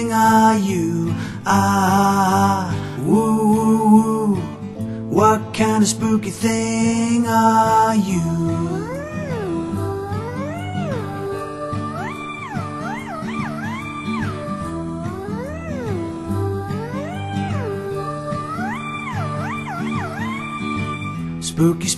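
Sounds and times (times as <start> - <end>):
speech: 0.0 - 4.1, 5.2 - 8.9, 21.6 - 21.9
steady musical backing: 7.1 - 21.9
black cat meowing: 8.7 - 21.2.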